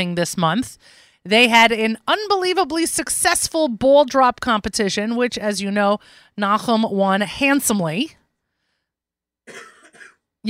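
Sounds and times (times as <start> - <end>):
speech: 0.0 - 8.2, 9.5 - 9.7
man coughing: 9.5 - 10.2.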